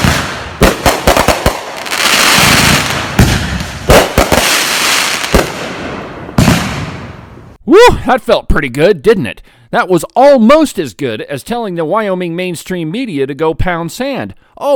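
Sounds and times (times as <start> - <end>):
steady hissing sizzling wash of fireworks: 0.0 - 5.7
rapid barrage of fireworks with sharp crackling bangs: 0.0 - 7.6
speech: 7.7 - 14.7.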